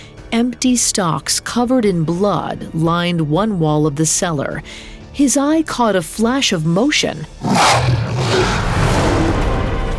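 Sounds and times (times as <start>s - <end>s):
speech: 0.3s - 8.6s
enormous she-wolf snarling as it lunges from a cellar: 7.4s - 9.1s.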